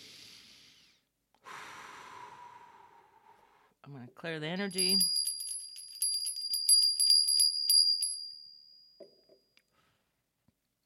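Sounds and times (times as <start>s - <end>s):
deep breath in during a guided relaxation exercise: 0.0s - 3.8s, 9.7s - 10.2s
speech: 3.9s - 5.2s.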